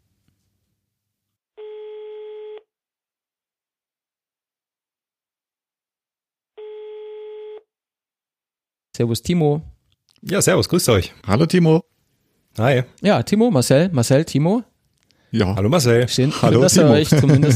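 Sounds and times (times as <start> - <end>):
telephone ringing tone while placing a phone call: 1.6 - 2.7, 6.6 - 7.7
speech: 9.0 - 11.8, 12.6 - 14.7, 15.3 - 17.5
laughter: 16.1 - 17.5.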